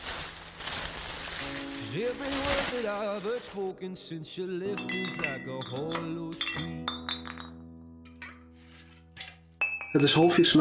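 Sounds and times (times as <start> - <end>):
speech: 1.9 - 7.0, 10.0 - 10.6
empty glass bottles clinking together: 4.7 - 8.4, 9.2 - 10.5.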